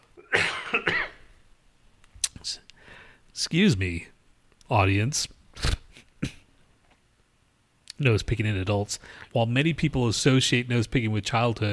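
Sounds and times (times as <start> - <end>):
rough coughs: 0.2 - 1.3
speech: 3.4 - 4.1, 4.7 - 5.7, 8.0 - 11.7.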